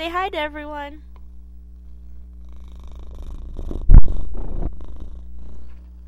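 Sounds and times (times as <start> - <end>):
speech: 0.0 - 1.1
male domestic cat purring: 1.2 - 6.0.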